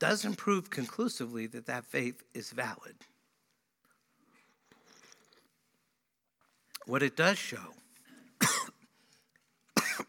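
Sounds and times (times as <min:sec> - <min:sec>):
speech: 0:00.0 - 0:03.1, 0:06.9 - 0:07.8, 0:08.4 - 0:08.7
man coughing: 0:08.4 - 0:08.9, 0:09.8 - 0:10.0.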